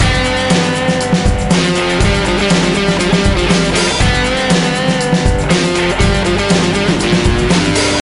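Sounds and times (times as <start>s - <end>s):
blues rock game music: 0.0s - 8.0s.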